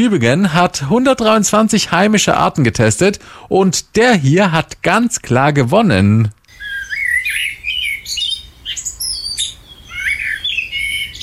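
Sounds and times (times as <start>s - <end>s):
speech: 0.0s - 6.4s
common blackbird singing: 6.5s - 11.2s.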